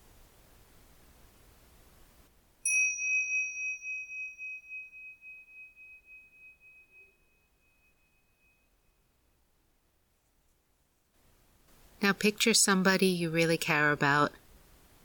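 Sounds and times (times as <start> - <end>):
soft hiss: 0.0 - 15.0
mindfulness bell ringing: 2.6 - 9.0
speech: 12.0 - 14.4.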